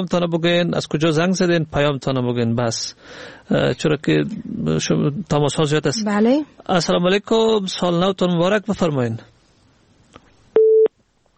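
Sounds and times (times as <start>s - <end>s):
speech: 0.0s - 9.3s
faint noise: 0.0s - 11.3s
electronic telephone busy tone after a dropped call: 10.6s - 10.9s.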